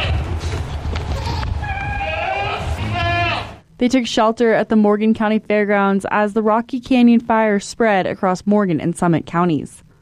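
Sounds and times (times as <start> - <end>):
farm goats bleating: 1.0 - 3.6
speech: 3.8 - 9.8.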